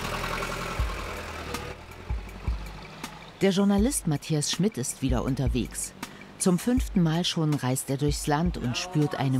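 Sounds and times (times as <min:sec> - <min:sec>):
large bus engine idling: 0:00.0 - 0:09.3
speech: 0:03.4 - 0:09.3.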